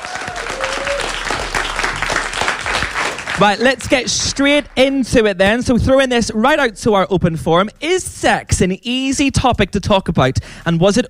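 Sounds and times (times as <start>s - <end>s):
audience applause: 0.0s - 5.0s
speech: 3.4s - 11.0s.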